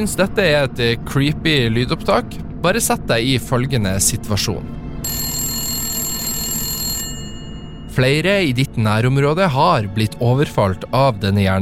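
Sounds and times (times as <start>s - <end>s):
speech: 0.0s - 5.3s, 8.0s - 11.6s
low hum: 0.0s - 10.4s
telephone ringing with a bright electronic trill: 5.0s - 8.3s.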